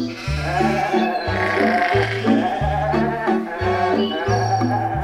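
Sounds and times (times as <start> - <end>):
goats bleating: 0.1 - 4.9.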